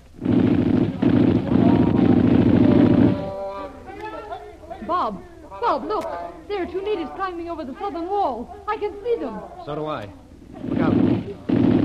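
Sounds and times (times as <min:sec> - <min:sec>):
machine gun fire during an attack on an old lamasery: 0:00.0 - 0:03.5, 0:10.5 - 0:11.8
speech: 0:05.0 - 0:11.0.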